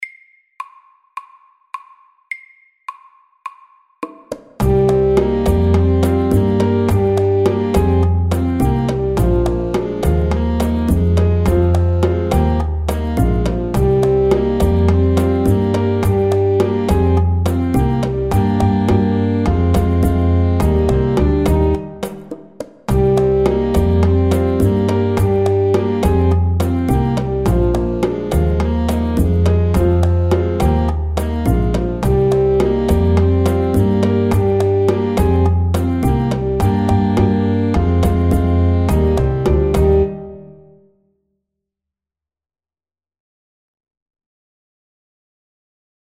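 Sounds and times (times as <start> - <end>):
driving saxophones at medium tempo: 4.6 - 22.0, 22.9 - 40.4.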